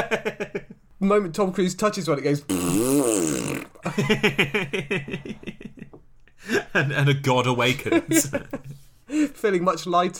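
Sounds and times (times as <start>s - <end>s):
speech: 0.0s - 0.4s, 1.0s - 5.6s, 6.8s - 10.1s
fart sound made with the mouth: 2.5s - 3.9s
laughter: 3.8s - 7.0s, 7.8s - 8.8s.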